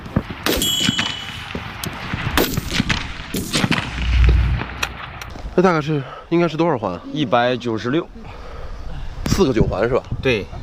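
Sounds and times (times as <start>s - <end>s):
gunshots in precision rapid-fire target shooting: 0.3s - 5.2s
low rumble: 1.3s - 5.8s
speech: 5.6s - 8.4s, 9.4s - 10.6s.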